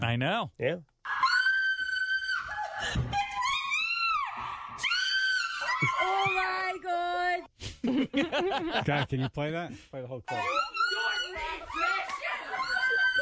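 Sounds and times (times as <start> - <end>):
speech: 0.1 - 1.2, 6.2 - 10.7
woman screaming while being attacked by bees in a played clip: 1.1 - 6.8, 10.3 - 13.2
laughter: 5.6 - 6.6, 7.8 - 9.5, 10.4 - 13.2.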